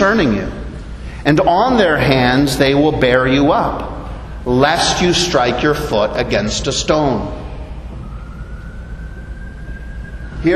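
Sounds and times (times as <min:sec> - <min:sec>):
speech: 0:00.0 - 0:00.6, 0:01.2 - 0:07.4
broad noise: 0:00.0 - 0:10.5
emergency vehicle siren: 0:04.0 - 0:10.5.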